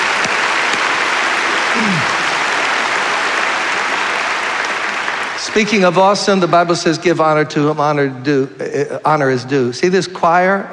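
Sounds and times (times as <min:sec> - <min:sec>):
faint cheer: 0:00.0 - 0:05.4
large crowd applauding: 0:00.0 - 0:07.0
speech: 0:01.8 - 0:02.2, 0:05.5 - 0:10.7.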